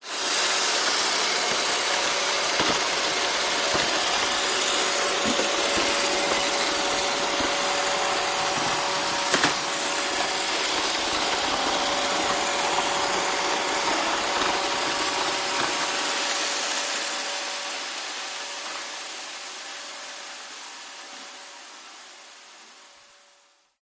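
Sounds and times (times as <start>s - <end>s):
household robot vacuum on tiled floor: 0.0s - 23.8s.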